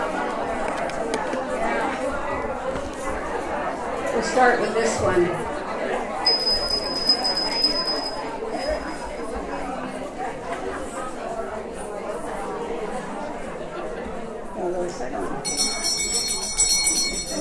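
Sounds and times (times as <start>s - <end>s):
steady murmur of crowd chatter: 0.0s - 17.4s
speech: 4.2s - 5.5s
hand bell ringing with a bright metallic tone: 6.2s - 9.2s, 15.4s - 17.4s.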